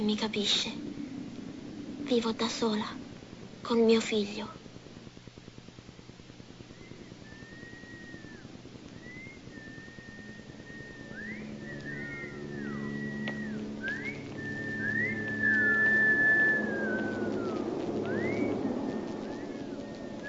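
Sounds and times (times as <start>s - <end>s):
speech: 0.0s - 0.9s, 2.1s - 3.0s, 3.6s - 4.6s
faint low hum: 0.0s - 20.2s
children whistling in a film scene: 6.7s - 20.2s.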